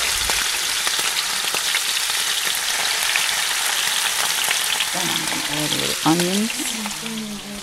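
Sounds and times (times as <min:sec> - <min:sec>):
shrimp frying in a pan: 0:00.0 - 0:07.6
speech: 0:05.6 - 0:07.6.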